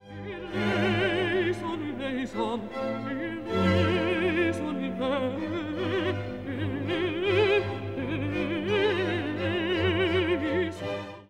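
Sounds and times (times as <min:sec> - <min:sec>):
alto voice singing: 0:00.0 - 0:11.2.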